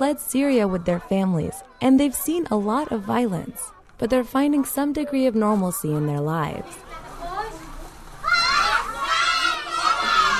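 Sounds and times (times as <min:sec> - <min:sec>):
speech: 0:00.0 - 0:07.0
classroom of first graders shouting a welcome in unison: 0:08.2 - 0:10.3.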